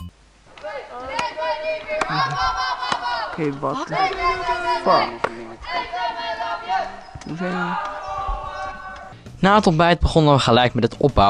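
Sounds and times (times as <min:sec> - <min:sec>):
group of voices shouting a camp yell in unison: 0:01.1 - 0:09.2
speech: 0:02.0 - 0:02.7, 0:03.4 - 0:07.9, 0:09.4 - 0:11.2.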